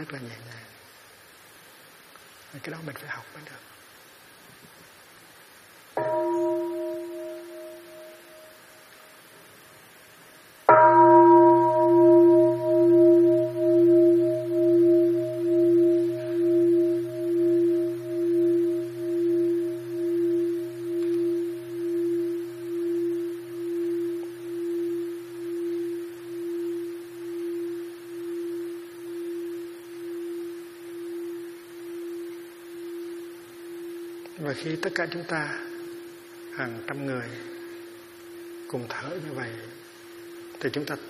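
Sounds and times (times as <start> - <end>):
speech: 0.0 - 0.7, 2.5 - 3.8, 34.8 - 35.6, 36.6 - 37.5, 38.7 - 39.8, 40.6 - 41.0
Buddhist mindfulness bell ringing: 6.0 - 8.6, 10.7 - 40.9.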